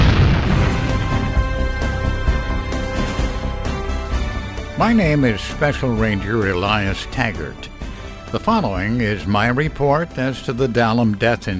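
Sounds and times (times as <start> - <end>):
science-fiction retro rockets firing: 0.0 - 3.4
speech: 4.8 - 7.7, 8.3 - 11.5.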